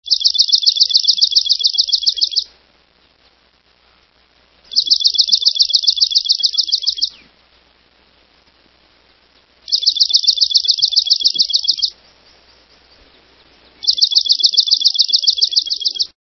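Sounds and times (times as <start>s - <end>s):
swamp sparrow singing: 0.0s - 2.5s, 4.7s - 7.3s, 9.7s - 16.2s.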